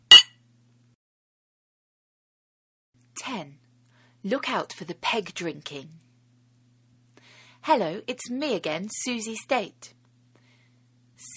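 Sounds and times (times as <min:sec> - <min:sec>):
glasses clinking in a toast: 0:00.1 - 0:00.3
speech: 0:03.2 - 0:03.6, 0:04.2 - 0:06.0, 0:07.6 - 0:10.0.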